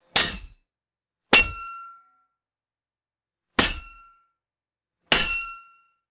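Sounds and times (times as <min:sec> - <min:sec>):
hard metallic aluminum tube strikes: 0:00.2 - 0:00.6, 0:01.4 - 0:01.8, 0:03.6 - 0:04.0, 0:05.1 - 0:05.6.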